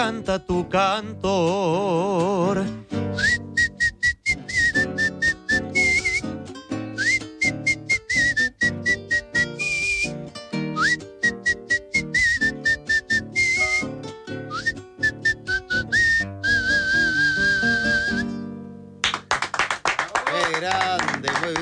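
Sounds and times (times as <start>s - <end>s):
speech: 0.0s - 3.5s
man whistling a lilting melody: 3.0s - 18.4s
sharp claps or taps: 19.0s - 21.6s.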